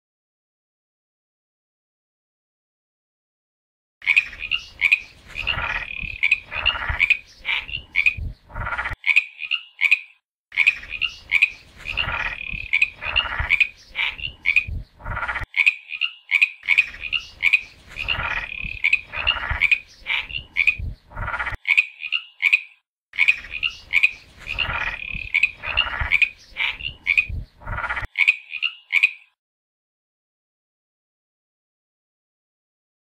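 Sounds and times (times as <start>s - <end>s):
frog croaking: 4.0s - 29.4s.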